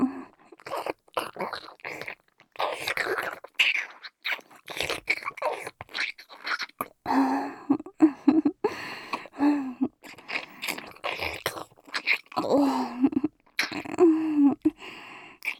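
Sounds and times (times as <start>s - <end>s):
wet chewing sounds with crunching and smacking: 0.4s - 7.0s, 9.0s - 12.6s, 13.3s - 14.0s, 15.4s - 15.5s
faint whispery breaths: 7.1s - 10.6s, 14.0s - 15.5s.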